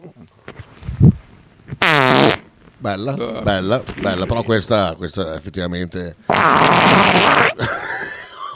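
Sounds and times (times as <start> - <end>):
voice making a wet sputtering fart imitation: 0.5 - 4.7, 6.3 - 7.6
speech: 2.8 - 7.9
laughter: 7.5 - 8.5.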